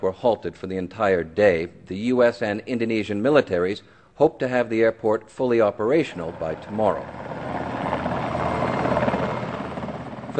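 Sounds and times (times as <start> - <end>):
speech: 0.0 - 7.3
U.S. Navy military helicopter rotors beating over Aceh's coast: 5.4 - 10.3.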